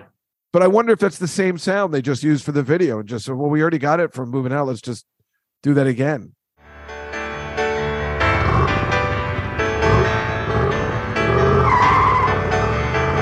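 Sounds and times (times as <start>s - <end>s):
speech: 0.5s - 6.4s
car engine revving: 8.2s - 13.2s
car tires skidding and squealing: 9.9s - 12.5s.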